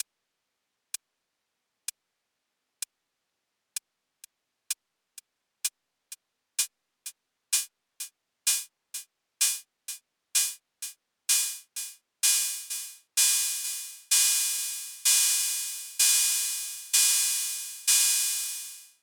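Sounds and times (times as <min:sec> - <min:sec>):
Akai Rhythm Wolf drum machine open hi-hat: 0:07.5 - 0:19.0.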